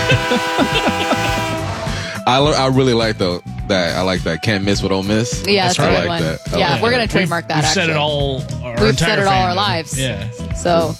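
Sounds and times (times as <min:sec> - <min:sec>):
train horn blaring: 0:00.0 - 0:01.9
laughter: 0:00.0 - 0:02.3, 0:05.6 - 0:09.7
speech: 0:00.1 - 0:01.1, 0:02.3 - 0:10.9.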